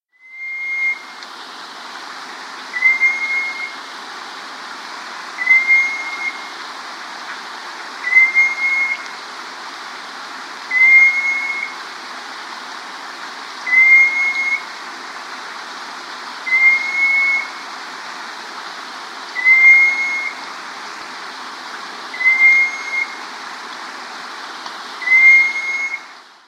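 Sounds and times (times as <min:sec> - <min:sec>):
Bicolored Antpitta calling in South America: 0:02.7 - 0:03.8, 0:05.4 - 0:06.6, 0:08.0 - 0:09.1, 0:10.7 - 0:11.8, 0:13.7 - 0:14.7, 0:16.5 - 0:17.6, 0:19.4 - 0:20.4, 0:22.1 - 0:23.2, 0:25.0 - 0:26.1.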